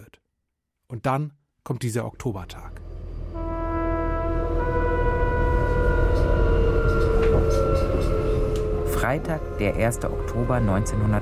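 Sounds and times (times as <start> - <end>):
speech: 0.9 - 2.8, 9.0 - 11.2
S-Bahn commuter train electric motors whining: 2.7 - 11.2.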